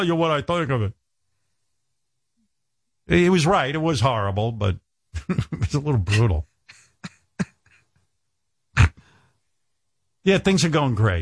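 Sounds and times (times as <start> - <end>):
speech: 0.0 - 1.0, 3.1 - 7.2, 10.2 - 11.2
person coughing: 5.2 - 7.9, 8.8 - 9.1.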